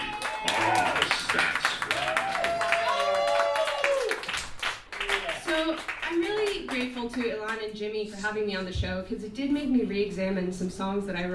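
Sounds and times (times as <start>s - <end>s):
live audience at a stage show clapping and cheering: 0.0s - 7.6s
speech: 7.0s - 11.3s.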